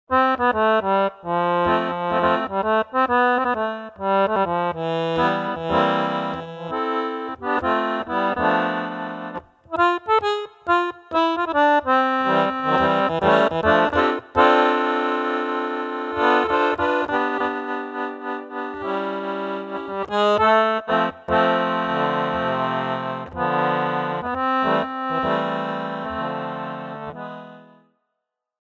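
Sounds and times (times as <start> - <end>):
jazz accordion music: 0.1 - 27.9.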